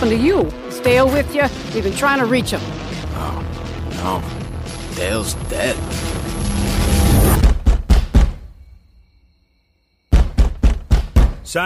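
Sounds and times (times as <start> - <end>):
speech: 0.0 - 4.4, 5.0 - 6.7
loud heavy knocking on a door: 7.4 - 8.4, 10.1 - 11.5.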